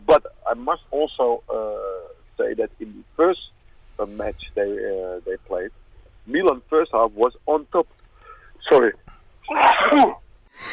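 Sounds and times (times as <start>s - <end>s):
speech: 0.2s - 8.0s, 8.6s - 10.7s
breathy exhale: 8.2s - 8.6s
sneeze: 9.6s - 10.2s.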